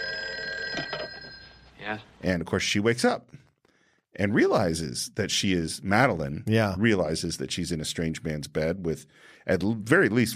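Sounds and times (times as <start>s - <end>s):
old-fashioned telephone bell ringing: 0.0s - 1.8s
speech: 1.8s - 3.4s, 4.2s - 10.3s.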